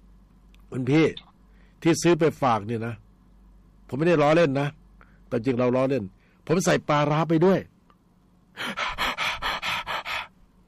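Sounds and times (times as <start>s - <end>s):
speech: 0.7s - 3.0s, 3.9s - 7.7s
person imitating asthmatic wheezing and panting: 8.6s - 10.3s.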